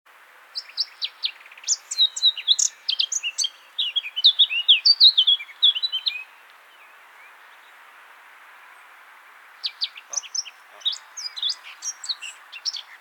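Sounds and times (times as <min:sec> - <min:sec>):
Eurasian blackcap warbling song: 0:00.6 - 0:06.4, 0:09.6 - 0:13.0.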